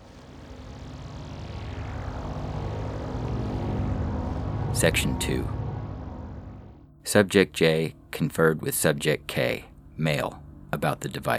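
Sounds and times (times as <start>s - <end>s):
vehicle engine droning while driving through the desert: 0.0s - 6.9s
speech: 4.8s - 5.6s, 7.1s - 11.3s.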